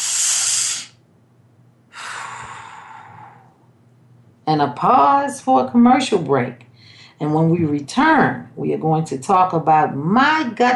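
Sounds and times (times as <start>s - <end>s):
deep breaths: 0.0s - 1.0s, 1.9s - 3.7s, 6.7s - 7.2s
speech: 4.5s - 10.7s.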